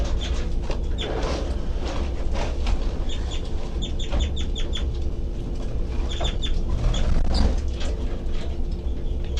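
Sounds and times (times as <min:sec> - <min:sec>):
baby birds giving rapid high-pitched peeping calls: 0:00.0 - 0:01.4, 0:02.9 - 0:05.0, 0:05.9 - 0:07.6
steady low rumbling background: 0:00.0 - 0:09.3.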